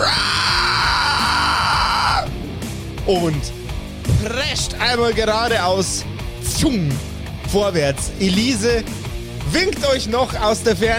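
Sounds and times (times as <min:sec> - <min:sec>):
giant toad letting out a loud harsh scream: 0:00.0 - 0:02.4
speech: 0:03.1 - 0:03.6, 0:04.2 - 0:10.9.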